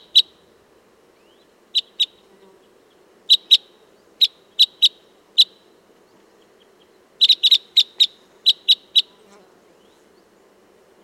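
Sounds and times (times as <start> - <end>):
Red crossbill Type 10 flight calls: 2.9 - 5.7, 6.4 - 9.1.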